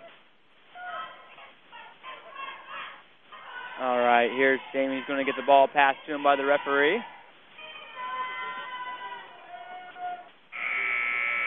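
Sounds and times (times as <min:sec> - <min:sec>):
speech: 0:03.8 - 0:07.2
loud steady electronic basketball buzzer blaring: 0:10.5 - 0:11.4.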